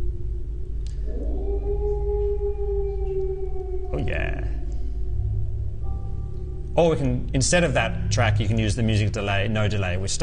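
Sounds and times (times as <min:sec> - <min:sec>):
deep rumbling drone: 0:00.0 - 0:10.2
animal howl: 0:00.9 - 0:06.6
speech: 0:06.8 - 0:10.2.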